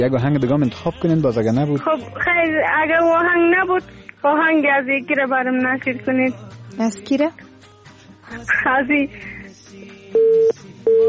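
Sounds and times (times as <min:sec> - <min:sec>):
speech: 0:00.0 - 0:07.5, 0:08.3 - 0:09.3
telephone busy tone after a dropped call: 0:10.2 - 0:11.0.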